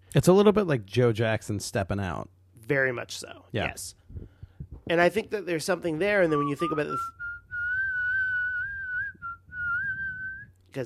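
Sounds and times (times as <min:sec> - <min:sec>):
speech: 0:00.1 - 0:04.3, 0:04.9 - 0:07.2
person whistling a tune: 0:06.3 - 0:10.5.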